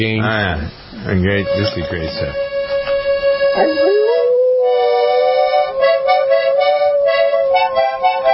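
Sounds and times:
speech: 0:00.0 - 0:02.8, 0:03.6 - 0:04.0
happy dog howling in a long loud wail: 0:03.6 - 0:08.3.

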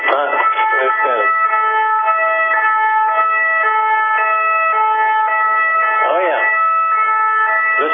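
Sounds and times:
person speaking: 0:00.0 - 0:01.3, 0:07.8 - 0:07.9
French police car siren wailing hi-lo in Paris: 0:00.0 - 0:07.9.

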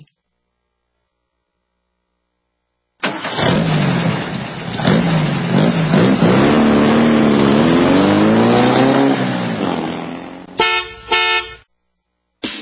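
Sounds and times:
car engine revving hard: 0:03.1 - 0:11.6
car horn blasts: 0:10.5 - 0:11.7.

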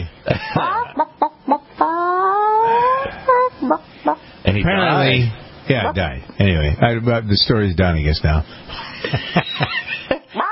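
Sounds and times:
speech: 0:00.3 - 0:01.1, 0:04.6 - 0:10.1
chicken clucking and squawking: 0:00.5 - 0:04.2, 0:10.1 - 0:10.5
laughter: 0:08.8 - 0:10.5.

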